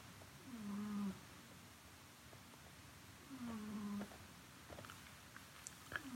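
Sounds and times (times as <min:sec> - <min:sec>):
faint hiss: 0:00.0 - 0:06.1
cat snoring softly: 0:00.4 - 0:01.2, 0:03.3 - 0:04.1.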